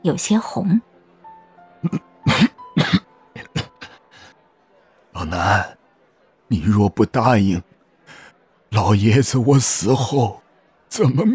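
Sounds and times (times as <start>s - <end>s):
speech: 0.0s - 0.9s, 1.8s - 2.5s, 5.2s - 5.8s, 6.5s - 7.7s, 8.7s - 11.3s
old man coughing into a handkerchief: 1.8s - 4.0s.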